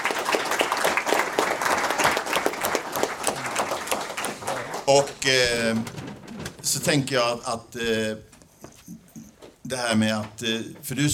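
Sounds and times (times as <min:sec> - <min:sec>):
audience applause: 0:00.0 - 0:06.1
speech: 0:04.9 - 0:06.0, 0:06.6 - 0:08.3, 0:09.7 - 0:11.1.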